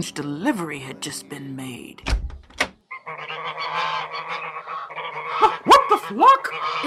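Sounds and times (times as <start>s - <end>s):
speech: 0.0s - 2.3s, 6.1s - 6.8s
flock of geese honking: 2.9s - 6.8s.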